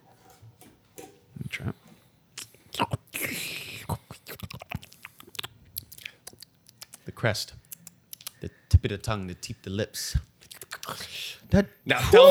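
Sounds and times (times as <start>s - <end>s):
soft mouth noises: 1.5s - 8.6s, 10.2s - 11.2s
speech: 1.6s - 1.8s, 7.2s - 7.6s, 8.4s - 10.3s, 10.9s - 12.2s
chewing a bite of cockroach-meat steak: 3.9s - 8.4s, 10.3s - 11.0s.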